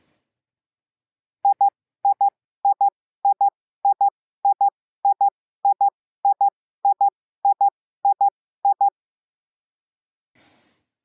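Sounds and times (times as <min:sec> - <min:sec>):
Morse code letter I beeps: 0:01.4 - 0:08.9.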